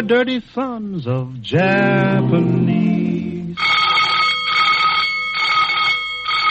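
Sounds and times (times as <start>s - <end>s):
speech: 0.0s - 3.8s
loud alarm bell ringing with a harsh metallic tone: 3.6s - 6.4s.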